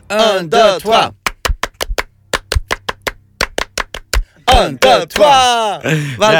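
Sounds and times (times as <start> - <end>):
speech: 0.1 - 1.2, 4.6 - 6.3
sharp hand claps in a studio: 0.9 - 5.5.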